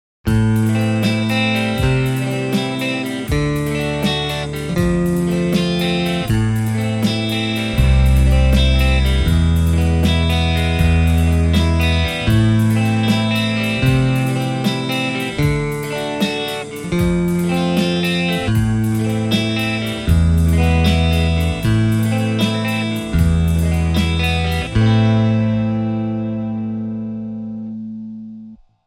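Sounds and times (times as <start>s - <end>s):
Telecaster guitar through JCM800 amplifier: 0.3s - 28.6s.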